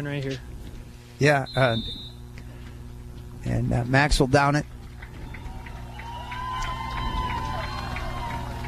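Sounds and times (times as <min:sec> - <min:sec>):
speech: 0:00.0 - 0:00.5, 0:01.2 - 0:02.0, 0:03.4 - 0:04.8
large stadium crowd roaring and cheering: 0:05.0 - 0:08.6
whoops and shouts from the crowd: 0:05.2 - 0:08.6.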